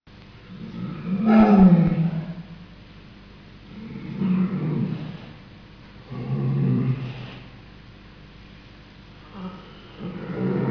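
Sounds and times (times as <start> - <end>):
polar bear Ursus maritimus growling: 0.5 - 2.6, 3.7 - 5.4, 6.1 - 7.5, 9.2 - 10.6.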